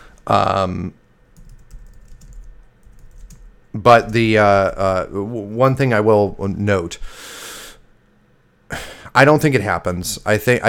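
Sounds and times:
speech: 0:00.2 - 0:01.0, 0:03.8 - 0:07.4, 0:09.2 - 0:10.6
typing on a computer keyboard: 0:01.4 - 0:03.5.

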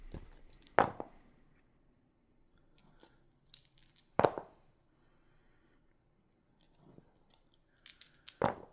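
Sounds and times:
dice rattling and clattering across a surface: 0:00.1 - 0:01.1, 0:02.7 - 0:04.5, 0:06.5 - 0:08.7.

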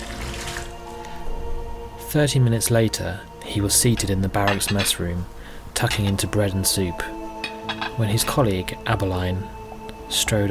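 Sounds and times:
water sloshing as someone enters a bath: 0:00.0 - 0:00.9
speech: 0:02.1 - 0:07.2, 0:08.0 - 0:10.4.

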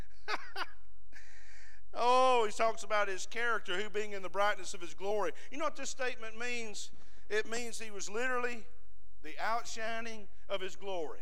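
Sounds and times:
heavy breathing into a microphone without windscreen: 0:01.2 - 0:01.9, 0:06.9 - 0:07.3
speech: 0:02.0 - 0:11.2.

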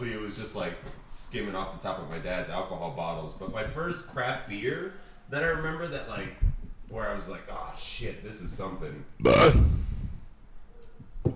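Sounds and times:
speech: 0:00.0 - 0:09.9
loud low rumbling burp: 0:09.2 - 0:10.2.

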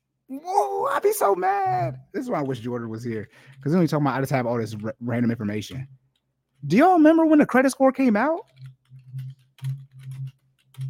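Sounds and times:
speech: 0:00.3 - 0:06.0, 0:06.6 - 0:08.7
typing on a computer keyboard: 0:02.3 - 0:06.3, 0:08.4 - 0:10.8.

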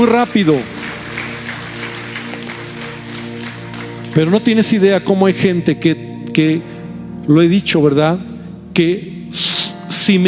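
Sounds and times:
speech: 0:00.0 - 0:00.8, 0:04.2 - 0:10.2
church audience applauding: 0:00.0 - 0:04.7
sustained low musical tone: 0:00.0 - 0:10.2.

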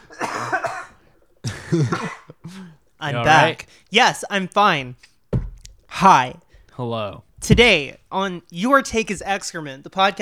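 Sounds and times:
person coughing: 0:00.0 - 0:02.7
speech: 0:01.7 - 0:05.1, 0:06.0 - 0:10.2.

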